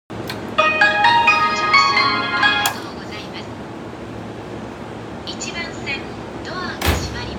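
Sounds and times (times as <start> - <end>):
train sounds on the JR Keiyo Line: 0.1 - 5.9.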